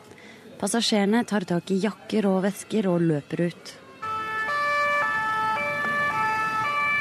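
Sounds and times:
speech: 0:00.6 - 0:03.8
ambulance sirens leaving a crime scene: 0:02.5 - 0:06.9
low rumble of road traffic: 0:04.0 - 0:06.9.

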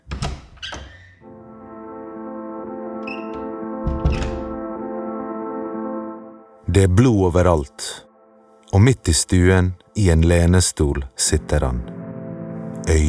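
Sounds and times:
door clunking and rattling open: 0:00.0 - 0:01.2, 0:03.0 - 0:04.7
woman knocking on a door: 0:03.8 - 0:04.6
speech: 0:06.8 - 0:08.1, 0:08.7 - 0:12.0, 0:12.9 - 0:13.0.

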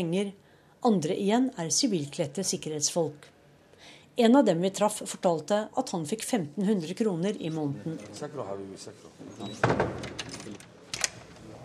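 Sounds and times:
speech: 0:00.0 - 0:10.6
door pushed firmly shut with a solid thud: 0:09.4 - 0:11.3
brief door rattle: 0:09.6 - 0:11.4.

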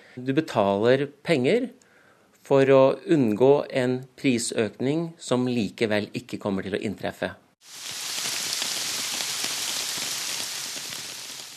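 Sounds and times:
speech: 0:00.2 - 0:01.8, 0:02.4 - 0:08.0
rain pattering on a hard surface: 0:07.6 - 0:11.5.

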